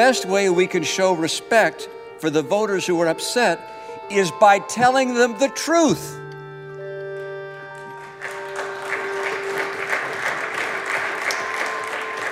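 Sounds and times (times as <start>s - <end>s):
speech: 0.0s - 6.2s
applause from many hands in a large Senate chamber: 7.7s - 12.2s.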